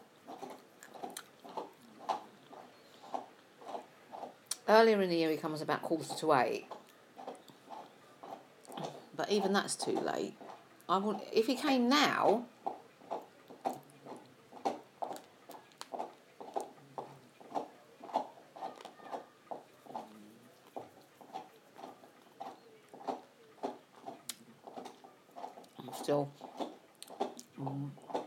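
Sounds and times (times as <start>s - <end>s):
munching and crunchy chewing of a snack: 0.2s - 4.6s, 12.6s - 28.2s
speech: 4.7s - 6.8s, 9.2s - 12.6s.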